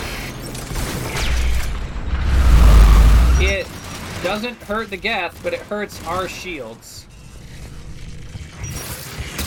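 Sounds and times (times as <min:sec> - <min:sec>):
deep loud rumble: 0:01.4 - 0:03.7
video game giant wave whooshing past: 0:01.6 - 0:03.6
speech: 0:04.3 - 0:07.1.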